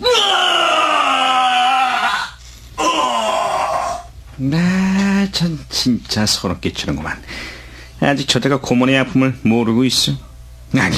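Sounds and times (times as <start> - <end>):
person screaming in the night: 0.0 - 4.1
speech: 4.4 - 4.8, 5.4 - 10.9.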